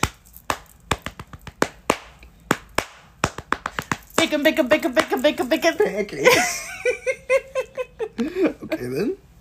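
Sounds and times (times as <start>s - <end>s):
scattered hand claps: 0.0s - 5.7s
speech: 4.2s - 7.4s, 8.8s - 9.3s.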